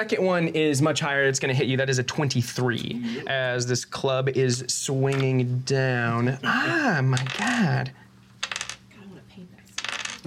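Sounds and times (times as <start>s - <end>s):
speech: 0.0s - 8.0s
three dice clattering across a hard tabletop: 7.2s - 7.7s, 8.4s - 8.8s, 9.8s - 10.2s.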